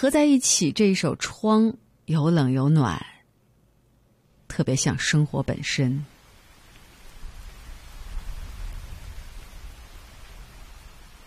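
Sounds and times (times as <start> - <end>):
speech: 0.0 - 3.1, 4.5 - 6.1
steady rain: 5.0 - 11.2
deep distant thunder rumble: 6.9 - 11.2.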